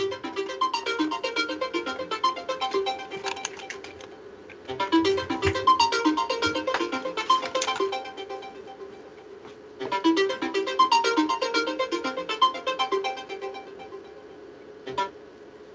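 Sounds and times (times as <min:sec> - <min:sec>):
melodic phone ringtone from an incoming call: 0:00.0 - 0:04.1, 0:04.8 - 0:09.1, 0:10.0 - 0:14.2.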